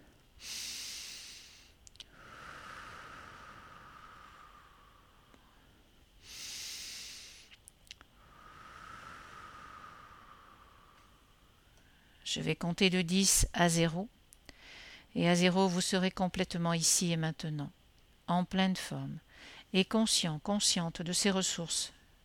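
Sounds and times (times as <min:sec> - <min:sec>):
slow deep breathing during a guided relaxation: 0:00.0 - 0:12.2, 0:14.5 - 0:15.1
speech: 0:12.3 - 0:14.2, 0:15.1 - 0:22.0.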